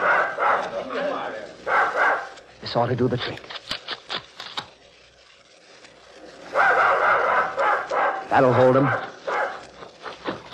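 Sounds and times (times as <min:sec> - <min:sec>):
pack of dogs on a scent trail barking and baying: 0:00.0 - 0:00.9, 0:01.6 - 0:02.4, 0:06.4 - 0:10.5
speech: 0:02.6 - 0:03.6, 0:08.3 - 0:09.1.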